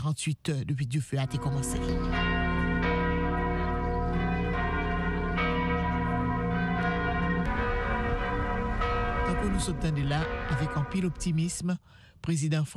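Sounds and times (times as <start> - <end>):
speech: 0.0 - 2.4, 9.4 - 12.7
large cathedral church bells in France ringing to mark the cathedral fire: 1.2 - 11.7.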